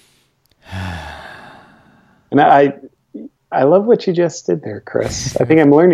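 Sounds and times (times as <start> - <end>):
deep breath: 0.0 - 2.3
speech: 2.3 - 5.9.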